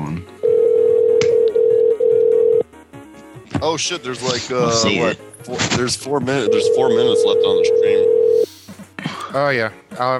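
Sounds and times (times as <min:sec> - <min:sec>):
telephone ringing: 0:00.4 - 0:02.6, 0:06.4 - 0:08.4
speech: 0:03.6 - 0:08.4, 0:09.3 - 0:10.1.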